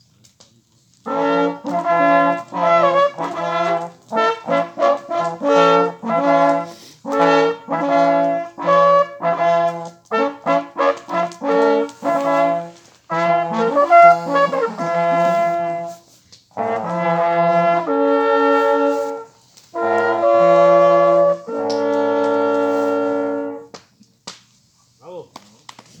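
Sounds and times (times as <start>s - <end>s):
hunting horn call: 1.1s - 23.7s.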